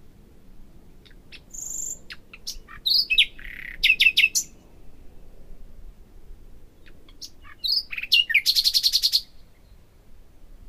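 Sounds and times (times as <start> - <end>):
Common nightingale song: 0.9 - 5.4, 6.7 - 10.1.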